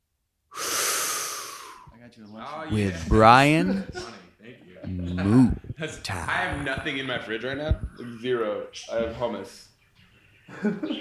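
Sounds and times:
sharp inhale of breath: 0.5s - 1.9s
speech: 2.0s - 9.7s, 10.5s - 10.9s.

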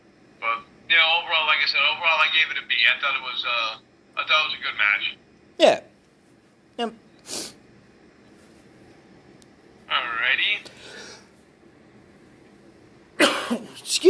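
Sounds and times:
speech: 1.1s - 5.9s, 6.8s - 7.4s, 13.9s - 14.0s
person coughing: 13.2s - 13.8s.

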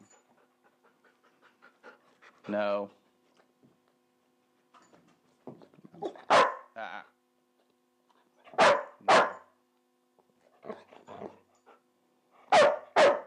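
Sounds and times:
speech: 2.5s - 3.0s
frustrated female dog barking: 6.1s - 6.8s, 8.5s - 9.5s, 12.5s - 13.2s.

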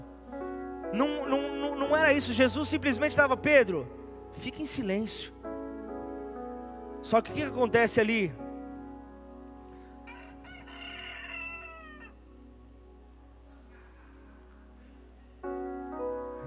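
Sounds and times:
speech: 0.9s - 5.4s, 7.0s - 8.4s
rooster crowing: 10.0s - 12.2s.

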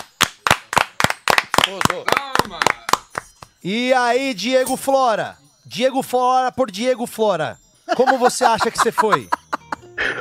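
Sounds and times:
applause in a steady rhythm: 0.0s - 3.6s
speech: 1.6s - 2.9s, 3.6s - 9.4s
laughter: 7.9s - 10.1s.

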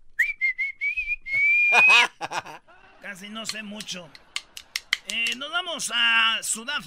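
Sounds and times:
person whistling: 0.1s - 2.0s
speech: 1.7s - 4.3s, 5.0s - 6.8s
laughter: 1.7s - 5.3s.

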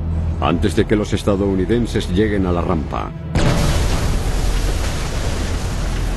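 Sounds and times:
speech: 0.4s - 3.3s
explosion shaking the ground: 3.3s - 6.1s.

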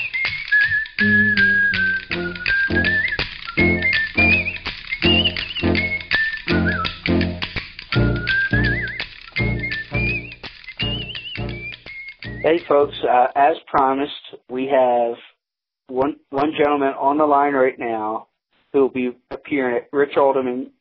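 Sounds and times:
man whistling a lively tune: 0.0s - 13.0s
steady rapid clacking percussion rhythm: 0.0s - 13.4s
speech: 1.0s - 1.2s, 12.7s - 15.3s, 15.9s - 20.7s.

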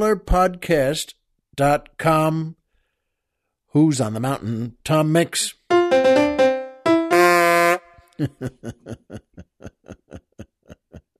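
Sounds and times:
speech: 0.0s - 2.6s, 3.7s - 6.3s, 8.2s - 10.2s
goofy reedy saxophone-like car horn honking: 5.7s - 8.0s
laughter: 8.2s - 11.1s.

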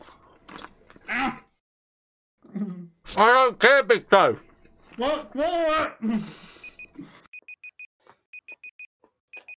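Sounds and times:
speech: 3.2s - 4.4s, 5.0s - 7.1s
timer beeping in short high electronic tones: 6.6s - 7.8s.

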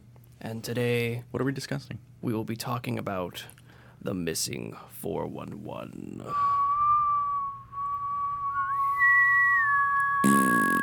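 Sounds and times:
speech: 0.4s - 6.6s
two people whistling a tune together in harmony: 6.3s - 10.3s.

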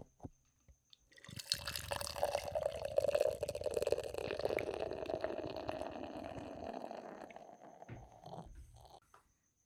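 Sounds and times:
stout beer pouring into a glass: 1.2s - 8.9s.

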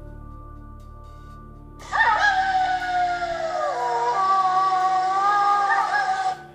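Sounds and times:
person imitating a wolf howling: 1.8s - 6.5s.

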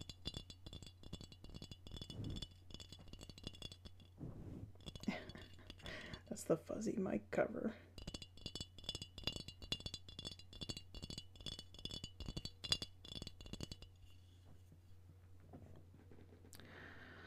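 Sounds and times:
glass mason jar with water clinking and rattling: 0.0s - 6.4s, 7.9s - 14.4s
speech: 6.4s - 7.8s.

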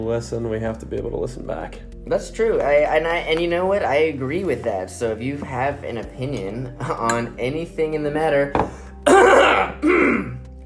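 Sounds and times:
speech: 0.0s - 10.3s
throat clearing and coughing: 9.0s - 10.4s.

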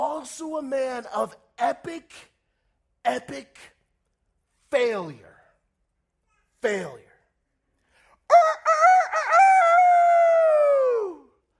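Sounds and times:
speech: 0.0s - 2.3s, 3.0s - 3.7s, 4.7s - 5.3s, 6.6s - 7.1s
short sharp rooster squawk: 8.3s - 10.4s
rooster crowing loudly: 8.3s - 11.1s.

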